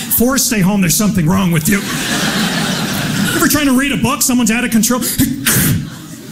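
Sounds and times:
speech: 0:00.2 - 0:02.5, 0:03.5 - 0:05.8
laughter: 0:01.1 - 0:06.3
person sneezing from allergy: 0:05.2 - 0:05.9.

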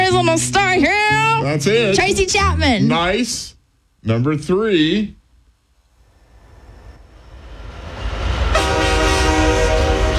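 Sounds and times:
speech: 0:00.2 - 0:05.2
low rumbling train sound in a song intro: 0:05.9 - 0:10.1
loud sustained train horn in a song intro: 0:07.7 - 0:10.1.

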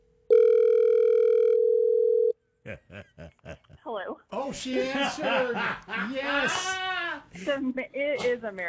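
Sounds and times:
long electronic ring tone on an outgoing phone call: 0:00.3 - 0:02.4
laughter: 0:02.7 - 0:07.6
speech: 0:03.9 - 0:08.6.

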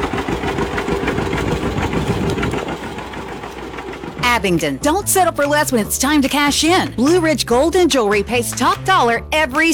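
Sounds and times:
antique tractor engine idling: 0:00.0 - 0:07.2
speech: 0:04.4 - 0:09.7.

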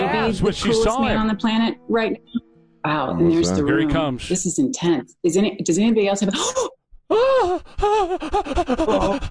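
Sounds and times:
speech: 0:00.2 - 0:09.3
woman gasping and panting heavily: 0:07.1 - 0:09.3.

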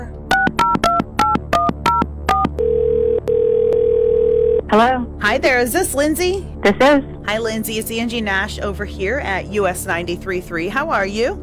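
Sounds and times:
touch-tone phone dialling beeps: 0:00.3 - 0:04.6
speech: 0:04.7 - 0:11.4.

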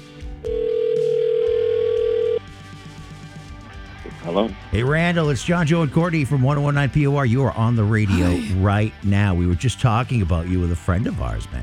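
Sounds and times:
telephone ringback tone of a call ringing out: 0:00.4 - 0:02.4
speech: 0:04.4 - 0:11.6.

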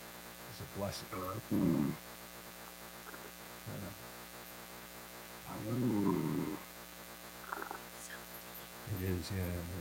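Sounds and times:
steady electrical hum: 0:00.0 - 0:09.7
speech: 0:00.6 - 0:02.2, 0:03.7 - 0:04.2, 0:05.5 - 0:06.4, 0:09.0 - 0:09.7
person snoring: 0:01.5 - 0:02.0, 0:05.5 - 0:06.6.

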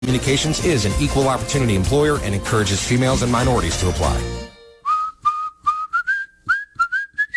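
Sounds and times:
speech: 0:00.1 - 0:04.5
person whistling a quick lilting tune: 0:04.8 - 0:07.3.

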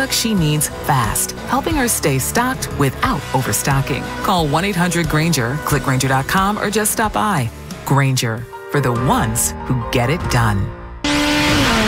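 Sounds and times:
speech: 0:00.0 - 0:10.8
motorcycle speedway racing engine whine: 0:11.0 - 0:11.8.

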